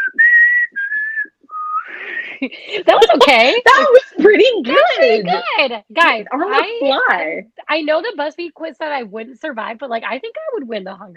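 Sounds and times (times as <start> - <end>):
person whistling an imitation of a mockingjay call: 0.0 - 2.2
speech: 2.4 - 11.1.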